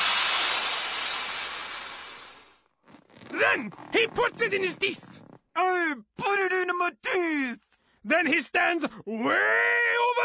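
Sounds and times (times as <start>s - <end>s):
balloon being inflated: 0.0s - 4.0s
speech: 3.4s - 10.2s.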